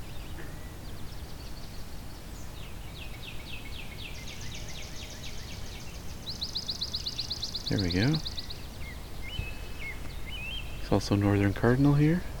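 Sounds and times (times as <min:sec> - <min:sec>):
low rumble of outdoor noise in a wetland: 0:00.0 - 0:12.3
swamp sparrows singing trills in a wetland: 0:00.0 - 0:12.3
speech: 0:07.7 - 0:08.4, 0:10.9 - 0:12.3.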